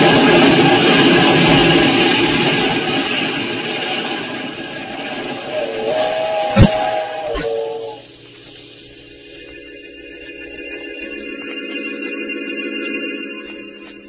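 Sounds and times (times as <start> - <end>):
heavy roar and hiss of a passing train: 0.0 - 14.0
loud sustained steam whistle blowing: 5.4 - 8.2
sharp clank: 6.6 - 6.9.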